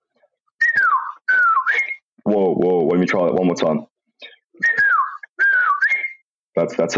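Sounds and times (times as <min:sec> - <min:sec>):
person whistling an imitation of an African emerald cuckoo call: 0:00.6 - 0:02.1, 0:04.6 - 0:06.3
speech: 0:02.3 - 0:04.3, 0:06.6 - 0:06.9.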